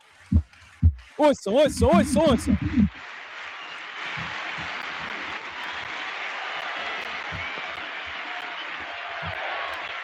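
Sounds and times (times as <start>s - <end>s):
speech: 1.2s - 3.0s
large crowd of fans applauding in a stadium at Calhambé: 2.9s - 10.0s.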